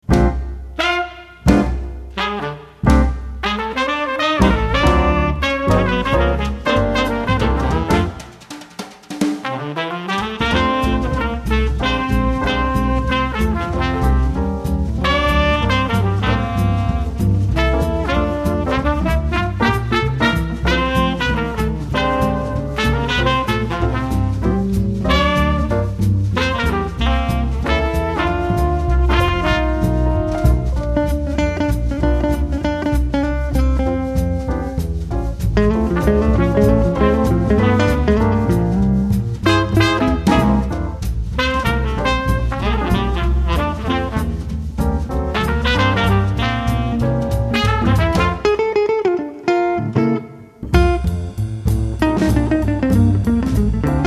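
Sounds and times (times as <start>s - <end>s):
jazz quintet bass: 0.0s - 8.4s, 9.5s - 54.0s
jazz quintet drums: 0.0s - 48.8s, 50.6s - 54.0s
jazz quintet piano: 0.0s - 54.0s
jazz quintet trumpet: 0.1s - 8.7s, 9.3s - 32.4s, 35.6s - 49.2s
jazz quintet saxophone: 0.8s - 8.4s, 9.4s - 14.4s, 15.0s - 31.2s, 41.4s - 44.4s, 45.4s - 48.8s.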